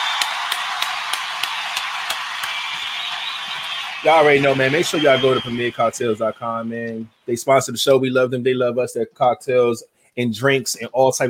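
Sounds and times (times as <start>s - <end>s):
audience applause: 0.0s - 6.4s
speech: 4.0s - 11.2s.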